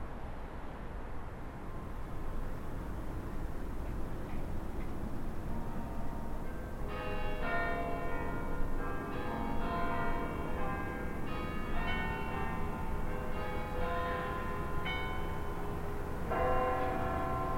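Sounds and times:
steady outdoor city rumble: 0.0s - 17.5s
bells of five churches ringing across the city: 5.0s - 17.5s.

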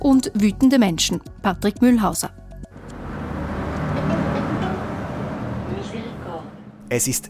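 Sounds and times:
speech: 0.0s - 2.4s, 6.9s - 7.2s
road noise inside a moving bus: 2.6s - 7.2s
city bus engine rumble: 2.7s - 7.2s.

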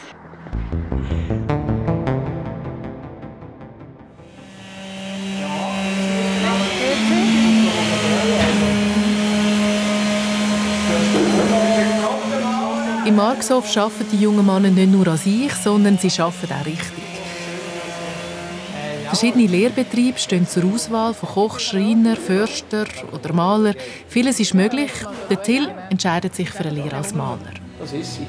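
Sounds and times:
high whine of a bus: 0.0s - 13.1s
bus engine throbbing and droning as it drives: 0.0s - 24.8s
speech: 13.2s - 17.0s, 19.1s - 28.2s.

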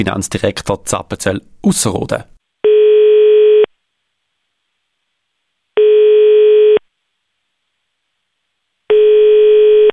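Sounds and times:
speech: 0.0s - 2.4s
telephone ringing tone on an outgoing call: 2.6s - 3.7s, 5.8s - 6.8s, 8.9s - 9.9s.

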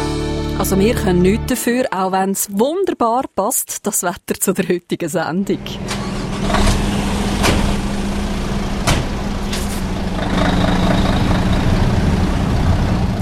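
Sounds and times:
speech: 0.6s - 6.7s
heavy 26-tonne truck engine idling: 5.8s - 13.2s.

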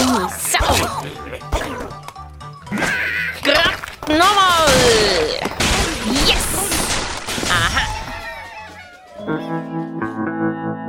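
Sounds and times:
busy layered game soundtrack: 0.0s - 10.8s
clattering smashing debris: 3.5s - 8.6s
cartoonish computer game crash effects as birds are shot at pigs: 4.7s - 8.4s.

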